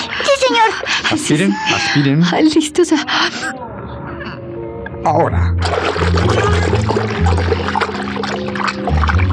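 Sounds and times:
speech: 0.7 - 3.7, 5.0 - 6.5
low droning musical tone: 5.1 - 9.3
water splashing as swimmers submerge near a dock: 5.6 - 9.3.

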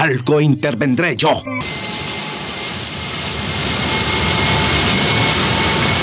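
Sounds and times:
speech: 0.0 - 2.2
four turbines of a giant four-engine jet airliner starting up: 0.0 - 6.0.

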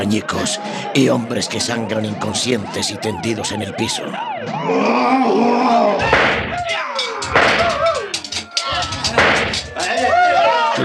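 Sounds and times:
speech: 0.0 - 6.9
brief cries or shouts: 4.6 - 10.8
loud sharp gunshots fired by police officers: 6.0 - 7.9, 9.1 - 9.8
chaotic action noise: 6.0 - 10.0.

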